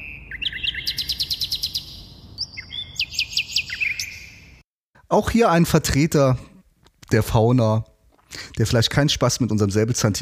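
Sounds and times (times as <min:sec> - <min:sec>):
nightingale singing: 0:00.0 - 0:04.6
speech: 0:05.1 - 0:06.5, 0:07.1 - 0:10.2.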